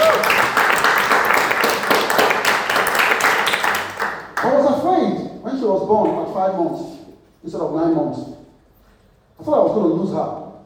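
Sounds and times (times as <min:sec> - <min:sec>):
crowd applauding with dense clapping: 0:00.0 - 0:04.6
speech: 0:05.9 - 0:08.4, 0:09.4 - 0:10.4.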